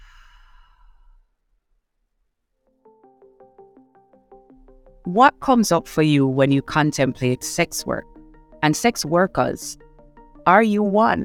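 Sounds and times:
deep breath in through the nose and out through the mouth: 0.0 - 1.3
speech: 5.0 - 9.8, 10.4 - 11.2.

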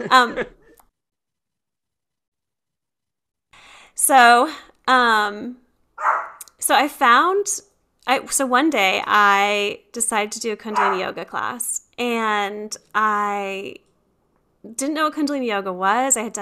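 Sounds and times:
speech: 0.0 - 0.6, 4.0 - 13.8, 14.6 - 16.3
laughter: 0.0 - 0.8
person imitating a dog barking with loud voiced yelps: 10.7 - 11.1.

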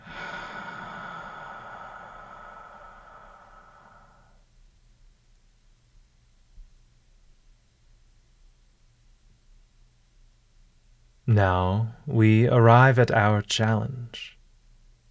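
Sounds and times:
slow breathing during guided meditation: 0.0 - 4.5
speech: 11.3 - 14.4.

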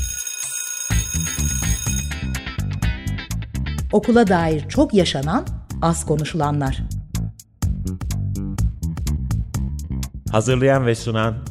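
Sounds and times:
school bell ringing: 0.0 - 2.8
upbeat music jingle with punchy drums and bass: 1.0 - 11.4
speech: 3.9 - 6.9, 10.3 - 11.4.

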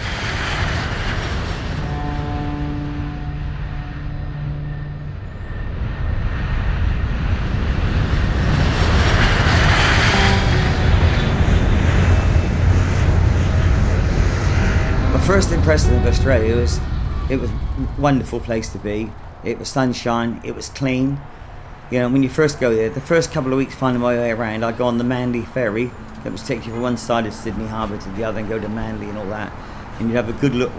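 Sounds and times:
airplane engine roar during flight: 0.0 - 30.7
broadband rush: 8.5 - 29.2
speech: 15.4 - 30.7.

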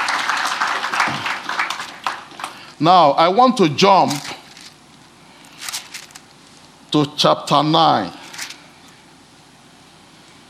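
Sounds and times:
church audience applauding: 0.0 - 2.6
speech: 2.8 - 4.3, 6.9 - 8.2.

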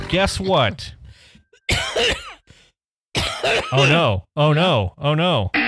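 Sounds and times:
speech: 0.1 - 1.0, 3.7 - 5.6
harsh throaty coughs: 1.7 - 2.5, 3.1 - 4.1.

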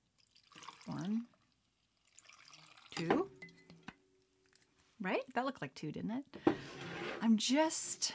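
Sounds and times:
rum poured into a glass of ice: 0.1 - 3.0
speech: 5.0 - 8.1.

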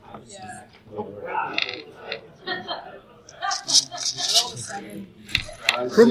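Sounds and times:
voices: 0.0 - 6.0
laughter: 1.5 - 4.8
dice rattling inside a giant cloth sack full of dice: 3.5 - 4.7
speech: 3.7 - 6.0.

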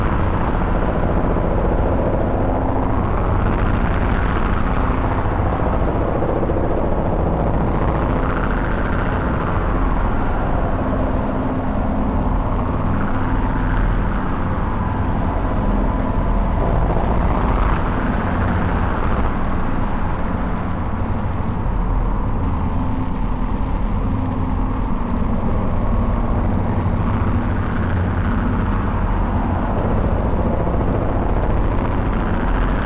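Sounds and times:
deep buzzy synthesizer drone at lowest octave with complex waveform and filter sweep: 0.0 - 32.8.

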